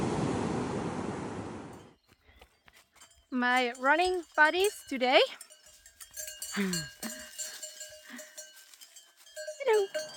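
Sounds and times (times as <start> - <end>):
ocean surf at the beach in Santa Monica: 0.0 - 1.7
speech: 3.3 - 5.5, 6.6 - 7.2, 9.7 - 10.1.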